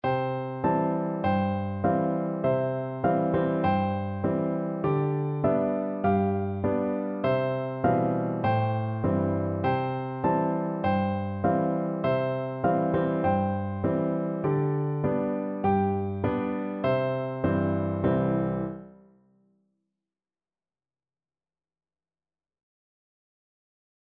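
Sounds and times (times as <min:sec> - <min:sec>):
piano duet: 0:00.0 - 0:19.1.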